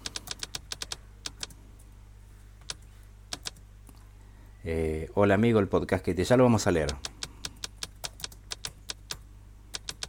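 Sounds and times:
computer keyboard typing: 0.0s - 1.6s, 2.6s - 3.6s, 6.8s - 10.0s
speech: 4.6s - 7.1s.

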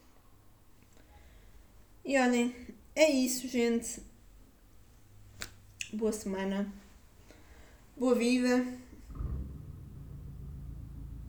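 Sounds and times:
speech: 2.1s - 4.1s, 5.9s - 6.8s, 8.0s - 8.8s
motorcycle engine rumbling outside, muffled: 9.1s - 11.2s.

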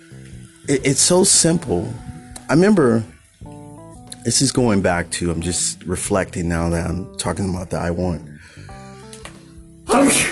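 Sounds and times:
speech: 0.7s - 3.2s, 4.2s - 8.3s
person sneezing: 9.9s - 10.3s.

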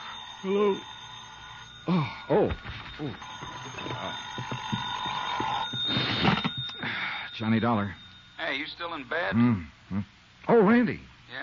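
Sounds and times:
telephone ringing with a bright bell tone: 0.0s - 9.3s
speech: 0.4s - 0.9s, 1.8s - 6.3s, 7.4s - 11.4s.

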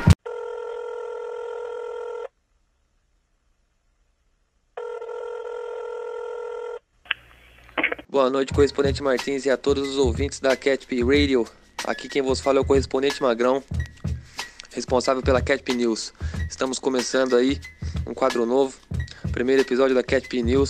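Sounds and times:
telephone ringing on an outgoing call: 0.2s - 2.2s, 4.8s - 6.8s
speech: 8.2s - 14.0s, 14.8s - 20.6s.

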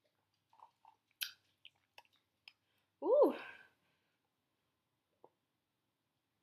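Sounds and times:
person chewing grass jelly and flan: 0.1s - 2.6s
person sipping a grass jelly and flan drink: 0.1s - 2.6s.

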